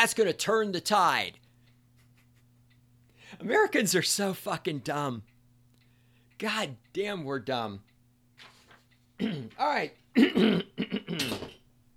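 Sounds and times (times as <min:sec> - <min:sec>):
speech: 0:00.0 - 0:01.4, 0:03.3 - 0:05.3, 0:06.4 - 0:08.5, 0:09.2 - 0:11.4
man clearing throat: 0:09.2 - 0:09.6, 0:10.2 - 0:11.6.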